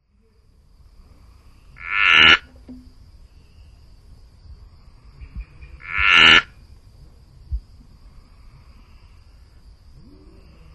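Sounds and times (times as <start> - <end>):
Aglyptodactylus securifer calling: 1.8 - 3.4, 5.2 - 6.6.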